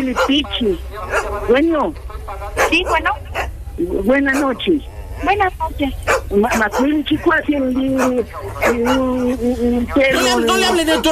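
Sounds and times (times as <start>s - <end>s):
speech: 0.0s - 2.0s, 2.7s - 11.1s
small dog yapping and whining: 0.1s - 0.4s, 1.1s - 1.4s, 2.6s - 3.5s, 4.3s - 4.6s, 6.0s - 7.0s, 7.9s - 9.4s.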